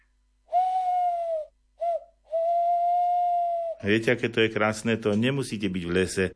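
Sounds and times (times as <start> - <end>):
voice imitating a long-eared owl hooting: 0.5 - 3.9
speech: 3.8 - 6.3.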